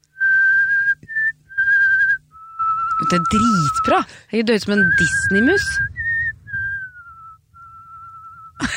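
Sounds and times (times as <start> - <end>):
low rumble: 0.0 - 8.7
person whistling a slow Christmas carol melody with vibrato: 0.1 - 4.0, 4.8 - 8.7
speech: 3.1 - 5.9
sudden burst of noise: 4.9 - 8.1.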